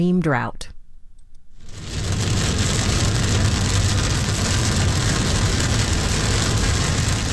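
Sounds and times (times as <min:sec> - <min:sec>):
speech: 0:00.0 - 0:00.7
steady rain falling outdoors near a mountain: 0:01.6 - 0:07.3.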